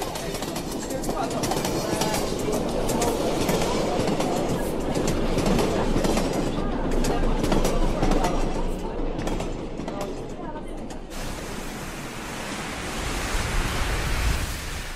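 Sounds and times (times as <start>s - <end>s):
faint voices murmuring: 0.0s - 11.1s
subway train rumbling along the rails heard from inside the car: 0.0s - 14.9s.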